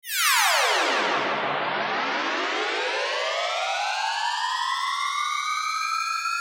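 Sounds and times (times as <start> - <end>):
spacey cartoon descending and ascending tone: 0.1 - 6.3.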